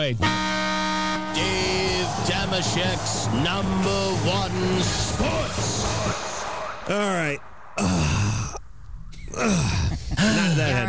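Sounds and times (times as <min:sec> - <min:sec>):
speech: 0:00.0 - 0:00.6, 0:01.3 - 0:06.2, 0:06.9 - 0:08.0, 0:09.4 - 0:10.8
person yawning with a long voiced groan: 0:07.8 - 0:08.6, 0:09.2 - 0:10.6.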